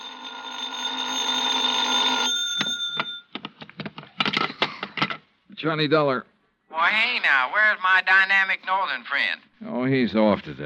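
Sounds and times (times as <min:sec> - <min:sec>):
telephone bell ringing: 0:00.0 - 0:03.3
speech: 0:05.6 - 0:10.6.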